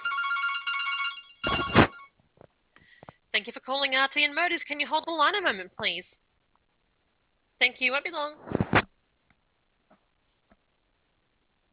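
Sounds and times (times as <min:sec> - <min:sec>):
telephone ringing with a warbling trilling tone: 0:00.0 - 0:02.2
speech: 0:03.7 - 0:06.2, 0:07.6 - 0:08.6.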